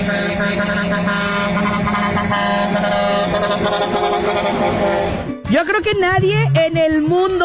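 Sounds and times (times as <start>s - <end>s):
musical novelty car horn playing a tune: 0.0s - 5.5s
speech: 5.6s - 7.4s.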